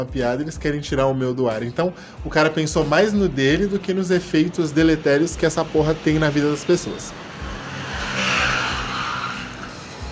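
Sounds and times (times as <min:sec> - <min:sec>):
speech: 0:00.0 - 0:07.3
motorcycle passing outside: 0:02.8 - 0:10.1.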